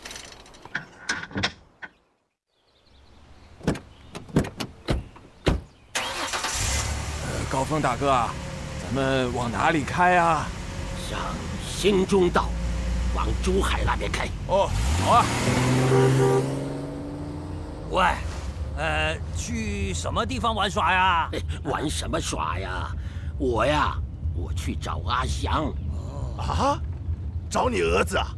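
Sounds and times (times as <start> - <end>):
car door thumping: 3.6 - 5.7
steady car engine rumble: 5.7 - 28.3
car engine starting: 5.9 - 20.2
people talking: 7.2 - 12.5, 13.2 - 16.4, 17.9 - 26.8, 27.5 - 28.3.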